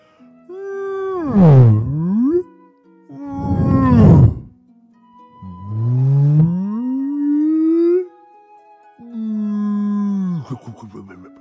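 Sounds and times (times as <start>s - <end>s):
whale moaning calls: 0.5s - 2.5s, 3.1s - 4.5s, 5.4s - 8.1s, 9.0s - 10.6s.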